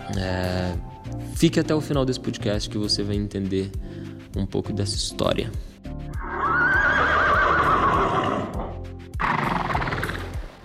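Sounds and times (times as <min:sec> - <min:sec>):
speech: 0:00.1 - 0:05.7
horse neighing: 0:06.2 - 0:10.5.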